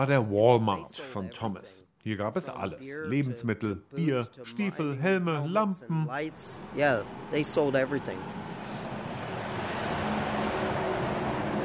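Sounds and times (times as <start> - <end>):
speech: 0.0 - 8.6
heavy logging truck loaded with tree trunks roaring past on a town main street: 6.2 - 11.6.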